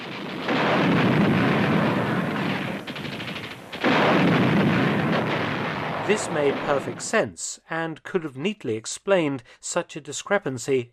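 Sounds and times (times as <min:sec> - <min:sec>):
heavy artillery shellfire barrage of explosions: 0:00.0 - 0:07.3
speech: 0:06.1 - 0:10.9.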